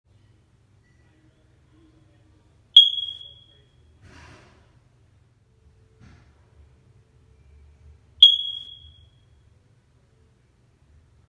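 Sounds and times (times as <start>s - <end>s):
smoke detector chirp: 2.8s - 3.7s, 8.2s - 9.3s.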